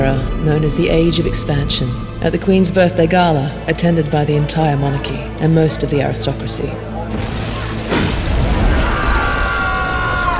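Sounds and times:
speech: 0:00.2 - 0:07.4
debris-like crackle: 0:07.1 - 0:10.3
explosion: 0:07.1 - 0:10.3.

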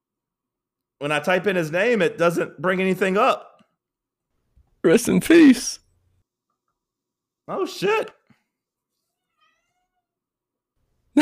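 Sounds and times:
speech: 0:01.0 - 0:03.5, 0:04.8 - 0:05.8, 0:07.5 - 0:08.2
cat meowing: 0:09.0 - 0:10.3.

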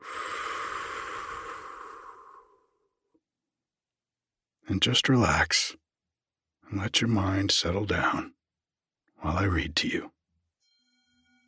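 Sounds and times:
deep slow breath in and out: 0:00.0 - 0:03.0
speech: 0:04.7 - 0:05.8, 0:06.7 - 0:08.4, 0:09.2 - 0:10.2.

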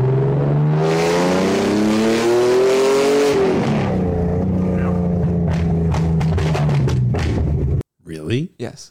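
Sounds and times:
TVR Speed Six straight-six engine revving in a production road car: 0:00.0 - 0:07.8
sharp exhaust crackles and pops: 0:04.8 - 0:07.8.

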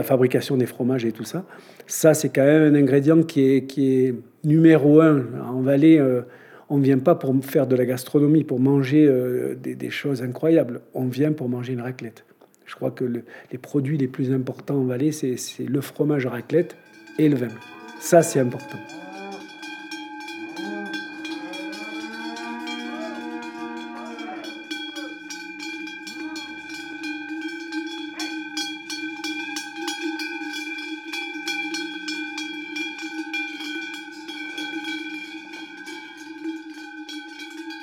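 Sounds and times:
speech: 0:00.0 - 0:19.0
cowbells clanging on a herd of cows leaving the barn for alpine pasture: 0:15.1 - 0:37.8
cows mooing: 0:16.8 - 0:28.6.

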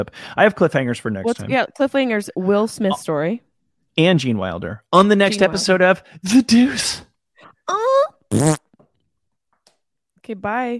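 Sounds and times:
speech: 0:00.0 - 0:07.1, 0:07.7 - 0:08.6, 0:10.3 - 0:10.7
cute squeaky fart noise: 0:08.3 - 0:08.7.

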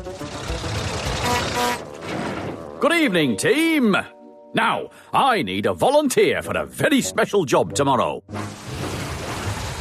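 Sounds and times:
small rail car engine drone: 0:00.0 - 0:02.8
small rail car rattling wheels: 0:00.0 - 0:02.8
speech: 0:02.8 - 0:08.5.

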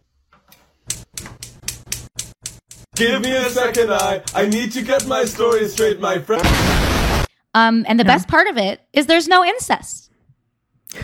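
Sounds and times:
faulty breaking oven clicking: 0:00.9 - 0:06.1
speech: 0:03.0 - 0:06.9, 0:07.6 - 0:10.1.

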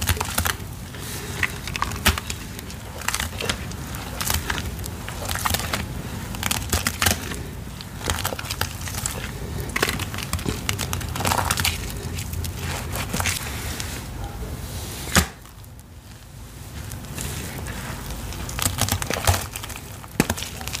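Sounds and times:
gym chalk crushed with gritty crunching and crackling: 0:00.0 - 0:20.7
low steady rumble: 0:00.0 - 0:20.7.

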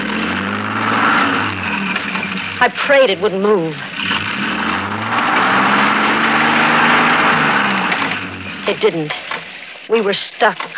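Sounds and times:
car engine revving while shifted into reverse: 0:00.0 - 0:09.9
speech: 0:02.6 - 0:04.2, 0:08.7 - 0:09.2, 0:09.9 - 0:10.7.

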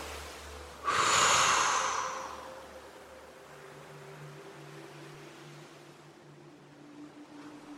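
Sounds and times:
forceful toned exhale after a muscle stretch: 0:00.8 - 0:02.6.

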